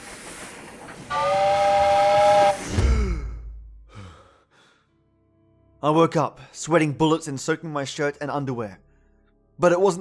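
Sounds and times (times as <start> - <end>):
steam train whistle blast: 1.1 - 2.7
speech: 5.8 - 8.8, 9.6 - 9.9.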